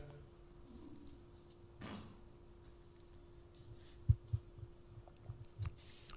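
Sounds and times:
low hum: 0.0s - 6.1s
soft swallowing gulps: 4.9s - 6.1s
person sipping water: 5.0s - 6.1s.

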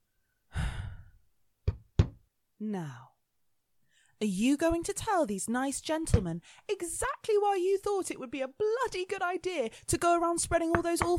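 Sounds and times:
heavy sigh-like exhale: 0.5s - 1.2s
sharp knocks on a door: 1.7s - 2.2s
speech: 2.6s - 3.1s, 4.2s - 11.1s.

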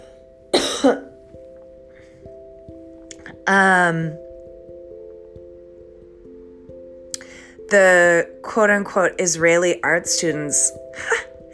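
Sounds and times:
harsh coughs with a throaty rasp: 0.6s - 1.1s
speech: 0.8s - 1.1s, 3.5s - 4.2s, 7.7s - 11.3s.

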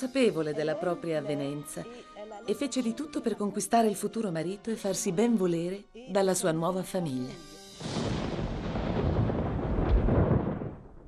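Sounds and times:
speech: 0.0s - 8.0s
deep rolling thunder from a threatening evening storm at Versailles: 7.8s - 11.0s.

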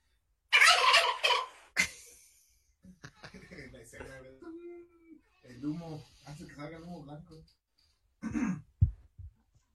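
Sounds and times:
turkey letting out a loud rattling gobble: 0.5s - 1.7s
speech: 5.6s - 7.6s.

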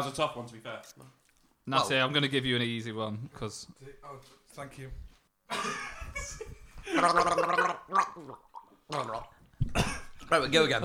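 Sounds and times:
speech: 0.0s - 10.8s
man gargling a mouthful of water while trying to sing: 6.9s - 10.8s.

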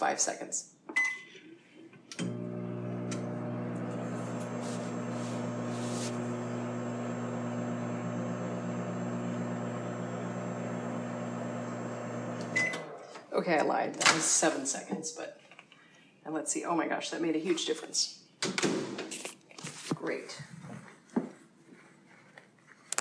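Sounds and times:
speech: 0.0s - 1.1s, 13.4s - 15.4s, 16.2s - 18.8s, 20.0s - 20.6s
microwave oven humming while heating a hard lump of brown sugar: 2.2s - 13.0s.

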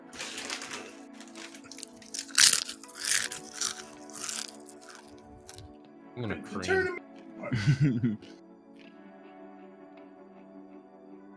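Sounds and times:
crunchy chewing: 0.0s - 5.7s
speech: 6.2s - 8.3s
laughter: 6.3s - 8.3s.

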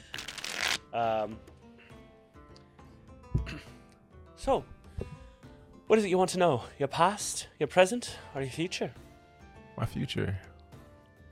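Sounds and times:
woman riffle-shuffling a deck of cards for a fortune reading: 0.0s - 0.8s
speech: 1.0s - 1.6s, 4.4s - 5.2s, 5.9s - 9.0s, 9.8s - 10.5s.

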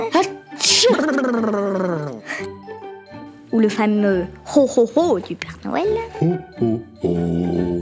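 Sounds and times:
voice performing a comical exaggerated queen's sneeze from a gadget: 0.6s - 1.6s
speech: 0.6s - 1.9s, 3.6s - 7.4s.

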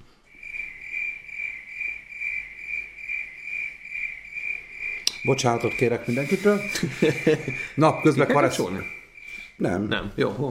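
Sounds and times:
cricket chirping: 0.3s - 10.4s
speech: 5.2s - 9.0s, 9.6s - 10.4s
laughter: 5.7s - 8.9s.

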